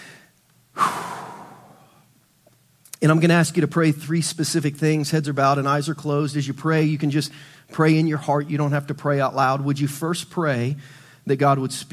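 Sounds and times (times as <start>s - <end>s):
people at a prayer gathering taking a deep breath: 0.0s - 2.0s, 7.3s - 7.7s, 10.8s - 11.2s
speech: 3.0s - 11.9s.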